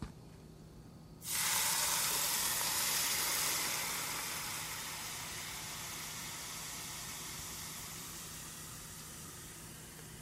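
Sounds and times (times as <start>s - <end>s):
hot oil poured over aromatics and spice mix in a bowl sizzling: 1.2s - 10.2s.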